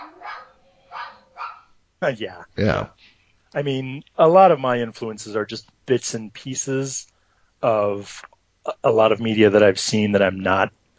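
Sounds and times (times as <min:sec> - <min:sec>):
dogs barking excitedly: 0:00.0 - 0:01.7
speech: 0:02.0 - 0:10.8.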